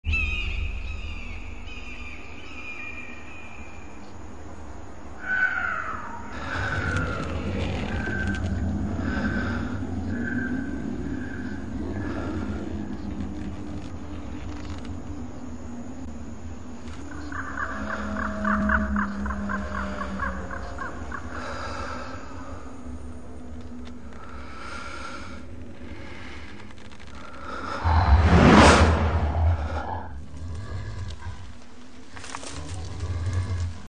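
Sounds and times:
night birds calling: 0.0s - 33.8s
breathing: 6.3s - 7.5s, 8.4s - 13.2s, 21.2s - 23.1s, 24.1s - 28.1s
creaking: 6.4s - 9.4s, 11.8s - 15.2s, 23.5s - 33.8s.

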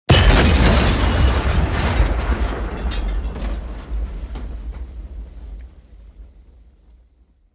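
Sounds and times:
car explosion: 0.1s - 4.6s.

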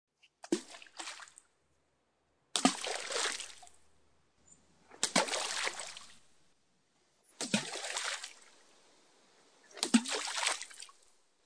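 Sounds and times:
stones thrown into water: 2.6s - 3.7s, 5.0s - 6.2s, 7.4s - 8.4s, 9.8s - 10.9s.

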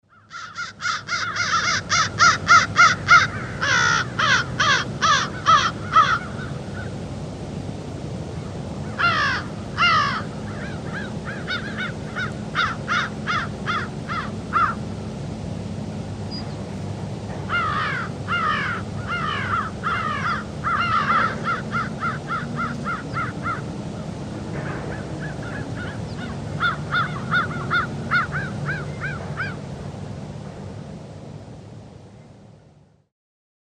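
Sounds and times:
wind in forest trees: 0.0s - 33.0s
crows in a forest among trees: 0.1s - 7.0s, 8.8s - 14.8s, 17.5s - 23.8s, 24.9s - 29.6s.

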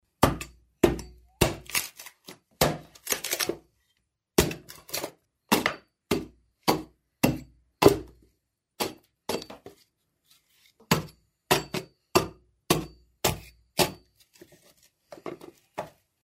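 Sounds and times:
axe splitting off wood chips: 0.1s - 3.6s, 4.3s - 9.7s, 10.9s - 14.2s.

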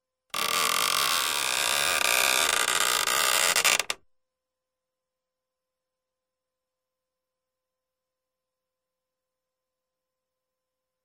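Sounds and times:
door creaking: 0.3s - 4.0s.

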